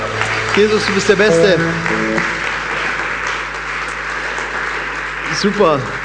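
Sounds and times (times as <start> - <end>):
church audience applauding during a service: 0.0 - 6.0
speech: 0.6 - 2.4, 5.4 - 6.0.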